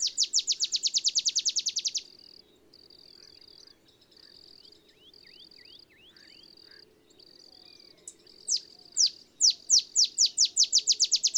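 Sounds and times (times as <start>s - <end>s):
male olive sparrow singing in early morning in Texas: 0.0s - 2.1s, 4.9s - 11.3s.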